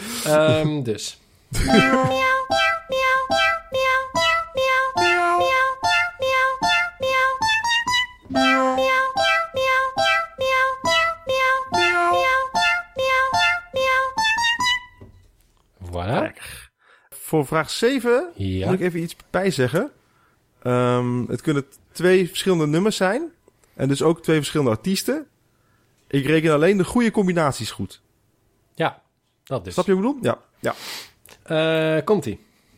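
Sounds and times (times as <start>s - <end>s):
speech: 0.2s - 2.4s, 17.3s - 20.0s, 20.6s - 25.3s, 26.1s - 28.0s, 28.8s - 32.5s
sampled cat meows strung into a fast tuneful melody: 1.7s - 15.0s.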